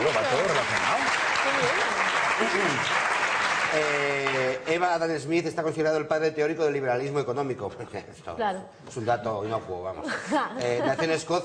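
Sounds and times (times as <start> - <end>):
audience applause: 0.0 - 4.9
speech: 4.7 - 11.4.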